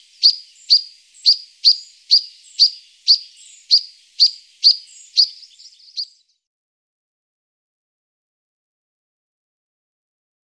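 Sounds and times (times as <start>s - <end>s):
European pied flycatcher soft twitters: 0.0s - 6.5s.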